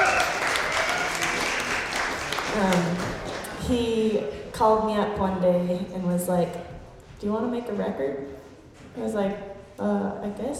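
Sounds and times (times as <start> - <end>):
crowd clapping: 0.0 - 4.0
speech: 3.7 - 8.4, 9.0 - 10.5.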